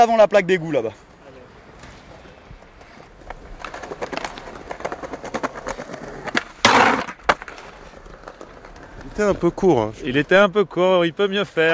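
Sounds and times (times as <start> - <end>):
speech: 0.0 - 1.1, 9.2 - 11.7
skateboard rolling clatter and clicks: 2.6 - 10.4
skateboard rear truck grinding along the metal edge of a bench: 6.6 - 7.2.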